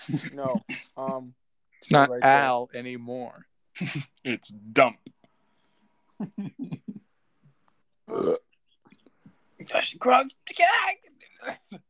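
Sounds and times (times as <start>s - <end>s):
speech: 0.0s - 5.1s, 6.2s - 6.8s, 8.1s - 8.4s, 9.6s - 11.8s
loud drawn-out burp: 8.0s - 8.6s, 11.3s - 11.8s.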